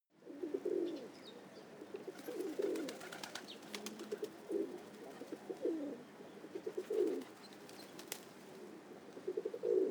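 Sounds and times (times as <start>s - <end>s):
pigeon cooing: 0.2s - 1.1s, 1.9s - 7.3s, 8.6s - 9.8s.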